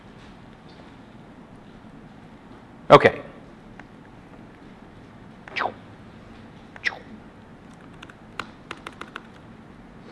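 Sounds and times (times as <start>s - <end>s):
speech: 2.9s - 3.3s
taps on a computer keyboard: 8.0s - 9.3s.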